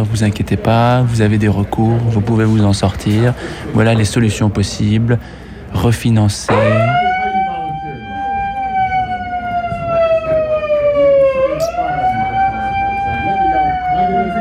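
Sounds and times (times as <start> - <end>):
speech: 0.0 - 6.8
siren wailing to celebrate a saved home: 6.5 - 14.4.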